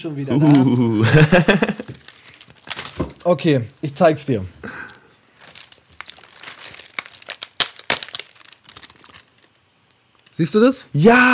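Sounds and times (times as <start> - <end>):
speech: 0.0 - 1.7, 3.2 - 4.8, 10.4 - 11.3
laughter: 0.4 - 1.9
plastic wrapper crinkling: 1.6 - 10.4.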